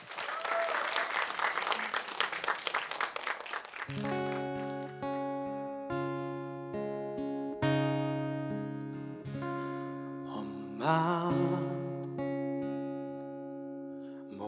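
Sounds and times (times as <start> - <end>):
audience applause: 0.0 - 5.0
instrumental music with sustained chords: 3.9 - 14.4.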